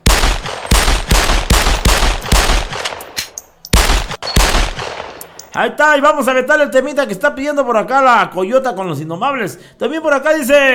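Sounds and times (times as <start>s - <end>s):
rapid burst of gunfire: 0.0s - 3.1s, 3.8s - 5.2s
speech: 5.6s - 10.7s.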